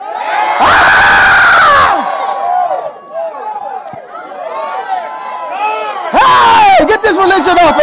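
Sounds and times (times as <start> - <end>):
audience screaming and cheering in praise of God: 0.0 - 7.8
speech: 7.2 - 7.8.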